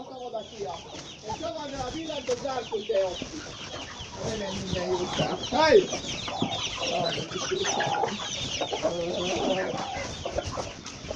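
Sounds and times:
speech: 0:00.4 - 0:10.7
rooster clucking and calling: 0:03.3 - 0:11.1.

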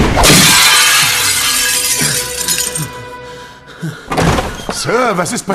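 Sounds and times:
mirror being smashed: 0:00.2 - 0:02.9
broken mirror glass pieces clinking as they settle: 0:00.3 - 0:03.0
speech: 0:05.1 - 0:05.5.

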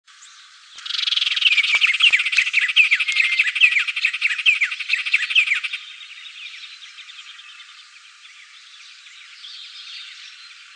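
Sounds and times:
white-rumped tanager Cypsnagra hirundinacea hirundinacea chattering notes: 0:00.8 - 0:05.8.

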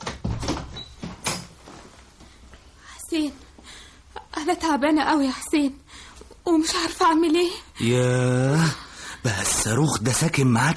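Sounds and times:
door being opened in a home, clunks and rattles: 0:00.0 - 0:01.5
speech: 0:03.1 - 0:03.5, 0:04.5 - 0:05.8, 0:06.4 - 0:10.7.

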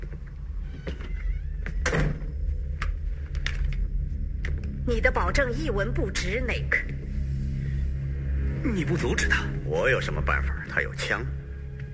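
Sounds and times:
door pushed open in a radio drama: 0:00.0 - 0:03.9
steady low hum: 0:00.0 - 0:11.9
speech: 0:04.9 - 0:07.2, 0:08.6 - 0:11.4.

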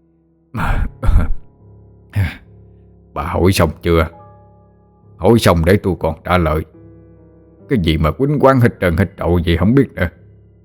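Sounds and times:
older man coughing: 0:00.6 - 0:01.5
speech: 0:03.2 - 0:04.2, 0:05.2 - 0:06.8, 0:07.7 - 0:10.2.

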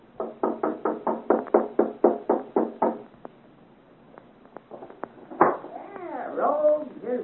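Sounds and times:
knocking on a door late at night: 0:00.2 - 0:03.1, 0:05.4 - 0:05.7.

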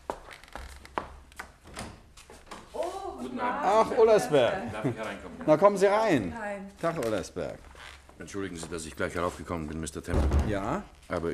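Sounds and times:
speech: 0:03.3 - 0:11.3
knocking on a door: 0:10.1 - 0:10.7.

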